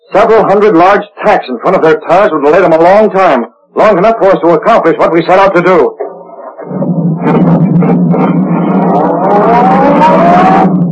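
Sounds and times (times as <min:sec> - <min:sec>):
speech: 0:00.1 - 0:06.0, 0:06.7 - 0:10.9
sedan engine roaring as it accelerates along a concrete road: 0:06.0 - 0:10.9.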